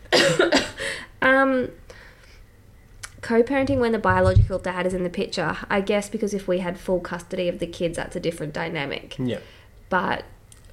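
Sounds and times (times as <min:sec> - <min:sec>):
person coughing: 0:00.1 - 0:01.0
speech: 0:01.4 - 0:01.8, 0:03.2 - 0:10.3.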